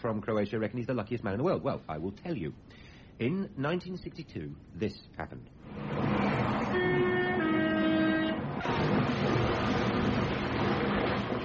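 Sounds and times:
speech: 0.0s - 6.5s
heavy continuous roar of a train crashing into a river: 5.6s - 11.4s
loud rumbling of a train: 5.6s - 11.4s
train horn blaring: 6.5s - 8.7s.

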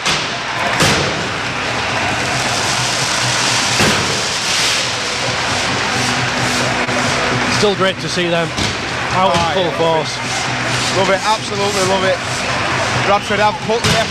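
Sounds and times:
firework bangs at a stadium: 0.0s - 5.3s
large outdoor stadium crowd roaring: 0.0s - 14.0s
speech: 7.6s - 12.3s, 13.1s - 14.0s.

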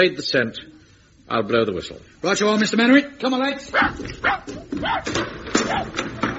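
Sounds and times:
speech: 0.0s - 6.3s
dog barking and yipping while taken outside to follow a scent: 3.7s - 6.3s.

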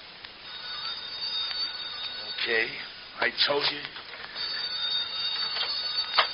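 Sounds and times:
low hiss: 0.0s - 6.3s
telephone ringing faintly: 0.4s - 3.3s, 4.2s - 6.3s
speech: 2.5s - 4.0s.

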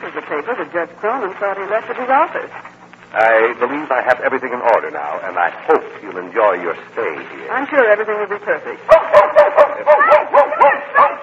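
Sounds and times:
speech: 0.2s - 10.2s
small dog barking indoors: 8.9s - 11.2s
small dog whimpering indoors: 9.7s - 11.2s.

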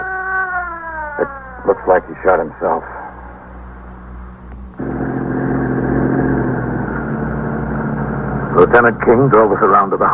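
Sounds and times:
ambulance engine rumble at an old tenement building: 1.2s - 2.8s, 4.7s - 10.1s
speech: 1.2s - 3.0s, 8.7s - 10.1s.

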